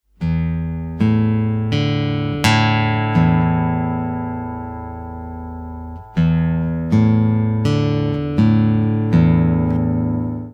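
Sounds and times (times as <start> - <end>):
guitar E A and D strings plucked: 0.1 - 10.5.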